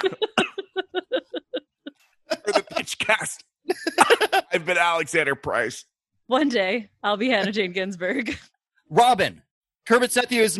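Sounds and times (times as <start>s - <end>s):
harsh coughs: 0.0s - 0.8s
laughter: 0.0s - 4.8s
speech: 2.9s - 3.5s, 4.7s - 10.5s.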